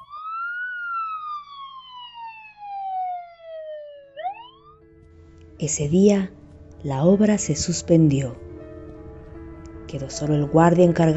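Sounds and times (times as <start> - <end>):
ambulance siren wailing: 0.0 - 5.0
speech: 5.6 - 8.4, 9.9 - 11.1.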